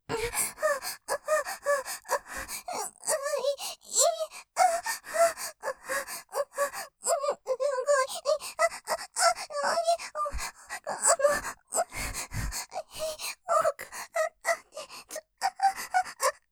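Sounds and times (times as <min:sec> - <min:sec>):
person panting breathlessly: 0:00.1 - 0:02.9, 0:03.5 - 0:07.0, 0:08.1 - 0:16.2.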